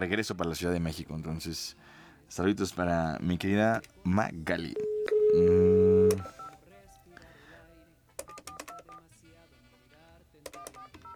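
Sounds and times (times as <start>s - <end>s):
speech: 0.0s - 6.4s
telephone keypad dialing tones: 4.7s - 6.6s, 8.2s - 9.0s, 10.5s - 11.1s.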